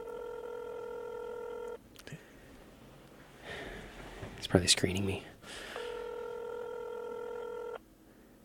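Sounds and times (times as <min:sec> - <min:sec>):
steady electronic phone-line tone of an outgoing call: 0:00.0 - 0:01.8, 0:05.8 - 0:07.8
speech: 0:04.4 - 0:05.6.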